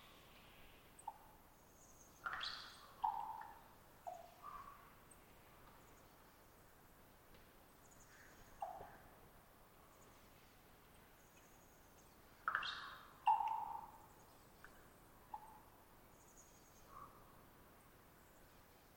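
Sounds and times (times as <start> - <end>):
hissing background: 0.0 - 18.9
common raven beak snap: 2.2 - 4.7, 12.5 - 13.9.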